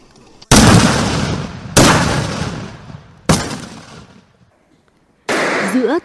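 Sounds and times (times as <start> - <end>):
rifle shots at a Vietnamese army shooting range: 0.5 - 4.3, 5.3 - 6.0.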